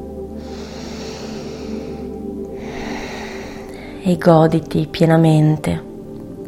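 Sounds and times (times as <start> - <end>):
steady soft humming musical drone: 0.0 - 6.4
slow deep breath drawn in through the nose: 0.3 - 4.0
speech: 4.0 - 5.9.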